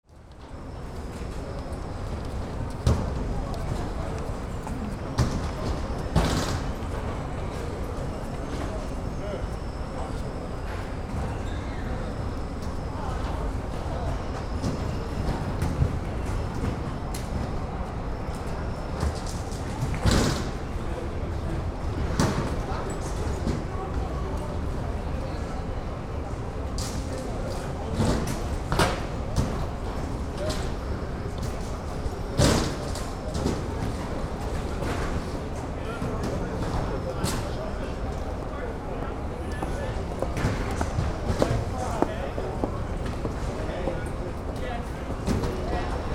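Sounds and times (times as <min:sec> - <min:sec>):
airport interior ambience at security control: 0:00.0 - 0:46.1.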